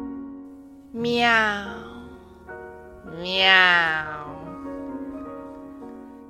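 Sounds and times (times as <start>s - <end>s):
female cat giving long drawn-out meows: 0.9s - 2.3s, 3.1s - 4.6s.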